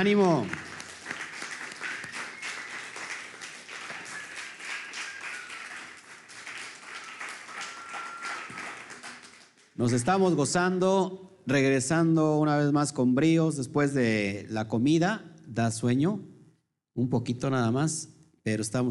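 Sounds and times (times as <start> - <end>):
speech: 0.0 - 0.6, 9.8 - 16.3, 17.0 - 18.8
large crowd applauding: 0.0 - 10.1.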